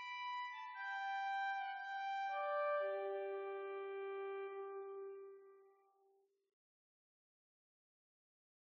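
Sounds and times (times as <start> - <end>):
organ playing octave 8: 0.1 - 5.6.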